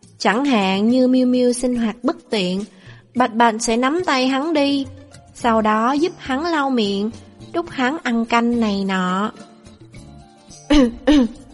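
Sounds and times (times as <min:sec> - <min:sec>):
speech: 0:00.2 - 0:09.5, 0:10.8 - 0:11.4
dry cough: 0:10.7 - 0:11.4.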